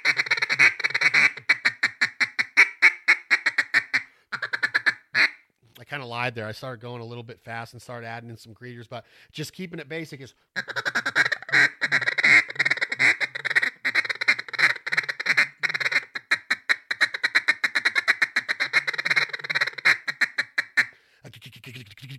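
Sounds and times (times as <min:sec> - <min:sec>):
handheld duck call blowing basic quacks: 0:00.0 - 0:05.4, 0:10.6 - 0:21.0
speech: 0:05.9 - 0:10.8.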